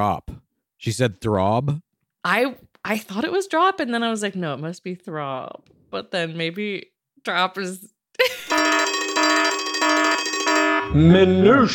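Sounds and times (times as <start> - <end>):
speech: 0.0 - 8.8, 10.9 - 11.7
loud electronic alarm buzzing: 8.5 - 11.0.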